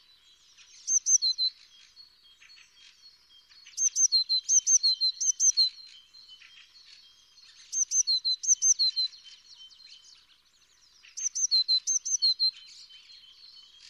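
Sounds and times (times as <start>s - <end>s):
Eurasian blue tit calls: 0.6s - 1.8s, 3.5s - 9.4s, 11.0s - 13.8s
bird twittering: 0.6s - 10.3s, 11.0s - 13.8s.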